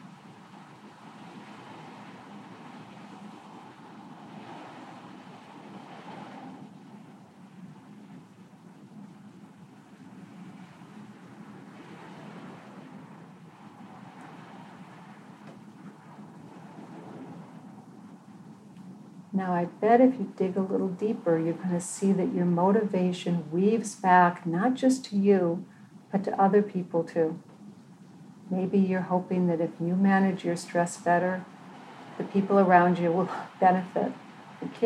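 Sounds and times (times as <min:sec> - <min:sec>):
dense rainfall hissing outside on a rainy day: 0:00.0 - 0:19.4, 0:31.0 - 0:34.8
speech: 0:19.4 - 0:27.5, 0:28.5 - 0:31.5, 0:32.3 - 0:34.8.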